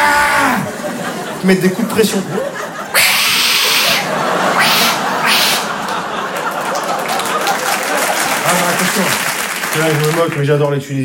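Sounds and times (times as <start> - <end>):
laughter: 0.6 - 9.4
speech: 1.4 - 2.7, 9.8 - 11.0
person imitating an aggressive cat with hisses and snarls: 4.6 - 5.7.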